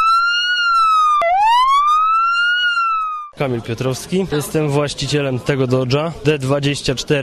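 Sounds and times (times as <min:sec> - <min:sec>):
Ford Crown Victoria police car siren wailing: 0:00.0 - 0:03.4
speech: 0:03.4 - 0:07.2.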